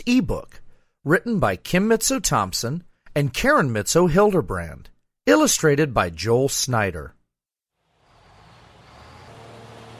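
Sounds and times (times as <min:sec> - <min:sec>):
speech: 0:00.0 - 0:07.2
heavy cement truck engine running: 0:07.9 - 0:09.9.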